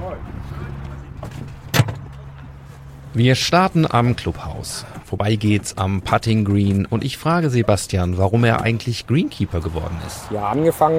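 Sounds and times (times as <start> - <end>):
thump and rustle of someone climbing into a golf cart: 1.2 - 2.2
speech: 3.1 - 10.9.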